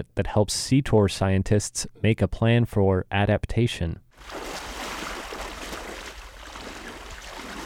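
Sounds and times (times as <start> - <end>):
speech: 0.0 - 4.6
water splashing and sloshing as someone wades into a bay: 4.1 - 7.6.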